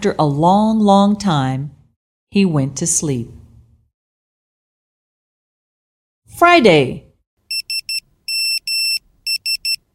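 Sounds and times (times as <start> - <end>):
speech: 0.0 - 3.4, 6.3 - 7.0
electronic alarm clock beeping: 7.5 - 9.9.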